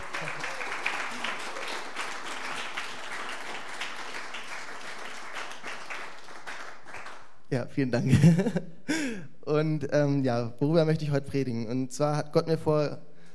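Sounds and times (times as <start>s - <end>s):
crowd applauding: 0.0s - 7.4s
speech: 7.5s - 8.7s, 9.6s - 13.1s
laughter: 8.0s - 8.7s.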